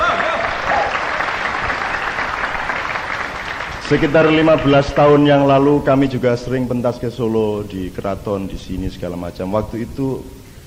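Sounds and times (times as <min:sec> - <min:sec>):
audience applause at a theatre performance: 0:00.0 - 0:05.5
speech: 0:03.9 - 0:10.4.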